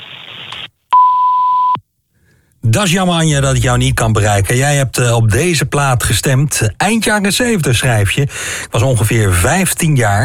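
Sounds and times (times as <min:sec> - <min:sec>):
voicemail beep before recording a message: 0:00.9 - 0:01.8
speech: 0:02.6 - 0:10.2.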